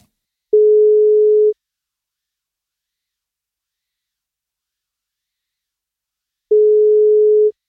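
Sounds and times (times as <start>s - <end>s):
telephone ringback tone while placing a call: 0.6s - 1.6s, 6.5s - 7.5s.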